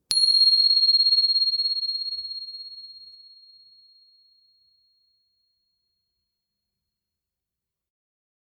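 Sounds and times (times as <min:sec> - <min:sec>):
meditation bell struck and ringing: 0:00.1 - 0:03.9.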